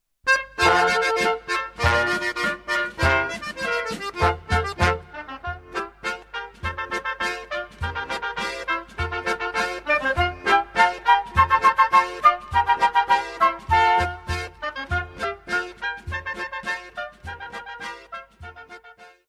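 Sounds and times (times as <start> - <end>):
Swiss schottische folk dance tune: 0.3 - 19.2.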